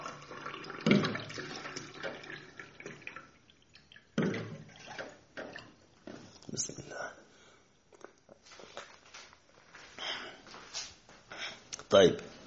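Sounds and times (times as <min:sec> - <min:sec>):
water pouring into a glass: 0:00.0 - 0:05.8
speech: 0:11.9 - 0:12.3.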